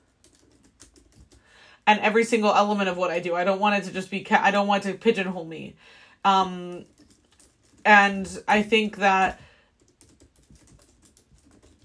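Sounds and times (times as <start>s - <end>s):
typing on a computer keyboard: 0.0s - 1.5s, 6.6s - 8.4s, 9.2s - 11.8s
speech: 1.9s - 7.0s, 7.8s - 9.4s.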